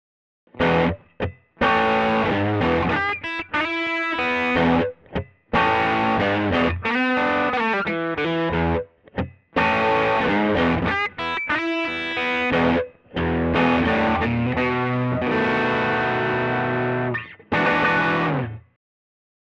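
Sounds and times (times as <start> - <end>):
blues played on electric guitar with Tele-style pickups: 0.6 - 18.7.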